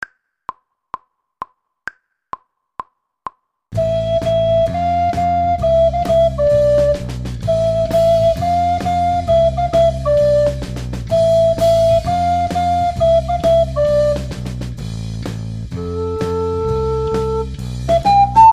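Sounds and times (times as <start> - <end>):
treble recorder playing: 3.8 - 14.4, 15.7 - 18.5.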